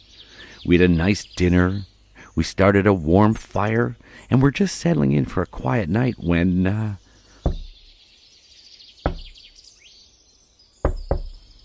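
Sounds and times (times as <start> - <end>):
faint birdsong: 0.0 - 11.6
insects chirping: 0.0 - 11.6
speech: 0.6 - 7.0
knocking on a wooden door: 7.4 - 7.8, 9.0 - 9.4, 10.8 - 11.4.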